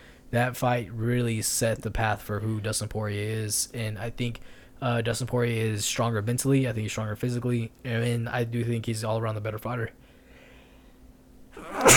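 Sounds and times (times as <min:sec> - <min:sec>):
brief quiet inhale: 0:00.0 - 0:00.3, 0:04.4 - 0:04.8, 0:10.0 - 0:11.1
speech: 0:00.3 - 0:10.0
single sharp loud sneeze: 0:11.6 - 0:11.9.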